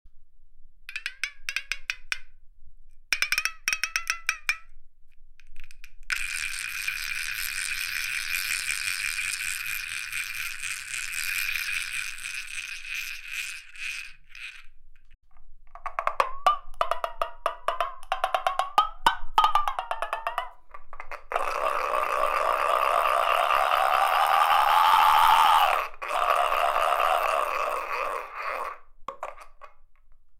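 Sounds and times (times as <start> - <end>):
small Rummelpott friction drum: 3.1 - 4.8, 5.6 - 29.9.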